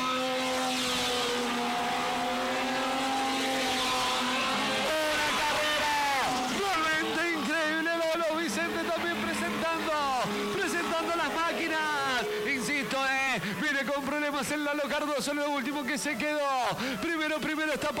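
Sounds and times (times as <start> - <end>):
small coupé race cars roaring past on a dirt track: 0.0 - 16.8
speech: 14.7 - 17.9.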